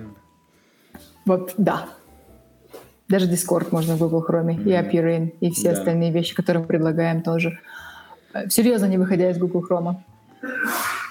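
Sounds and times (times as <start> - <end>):
speech: 1.3 - 2.0, 3.1 - 10.9
single sharp human sneeze: 10.4 - 11.0.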